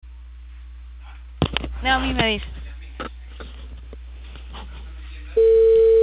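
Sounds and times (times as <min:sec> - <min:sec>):
speech: 0:01.8 - 0:03.2
telephone tone while a call is placed: 0:05.4 - 0:06.0.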